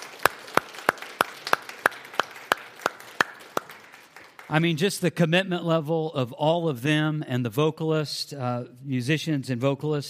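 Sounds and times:
audience clapping for the band: 0:00.0 - 0:04.9
speech: 0:04.5 - 0:10.0.

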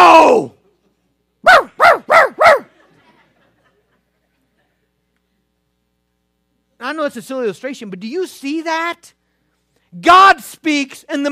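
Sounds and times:
dog barking: 0:01.4 - 0:02.7
laughter: 0:02.6 - 0:05.1
speech: 0:06.9 - 0:09.2, 0:09.9 - 0:11.3.

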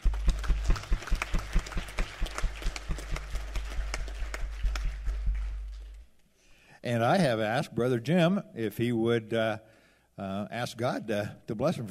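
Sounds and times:
audience applause: 0:00.0 - 0:06.0
speech: 0:06.9 - 0:11.9.

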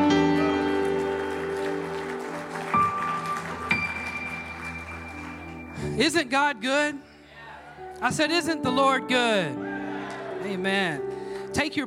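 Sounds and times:
audience applauding with sustained clapping: 0:00.0 - 0:06.2, 0:09.9 - 0:10.4
held organ or keyboard chords: 0:00.0 - 0:11.8
speech: 0:06.0 - 0:07.1, 0:08.0 - 0:09.6, 0:10.4 - 0:11.8.

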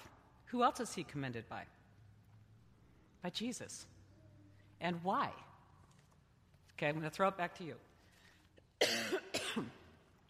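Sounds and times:
speech: 0:00.5 - 0:01.8, 0:03.2 - 0:04.0, 0:04.8 - 0:05.5, 0:06.8 - 0:07.9, 0:08.8 - 0:09.8
person coughing: 0:08.8 - 0:09.9.

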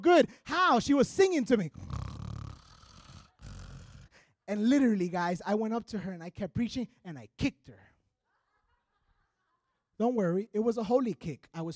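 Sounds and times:
speech: 0:00.0 - 0:02.0, 0:04.5 - 0:07.9, 0:10.0 - 0:11.7
voice imitating loud snoring of a woman in church: 0:01.7 - 0:04.2
laughter: 0:08.2 - 0:10.0.

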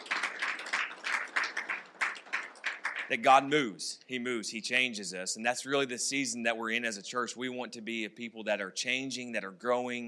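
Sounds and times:
crowd applause: 0:00.0 - 0:03.5
speech: 0:03.1 - 0:10.0.

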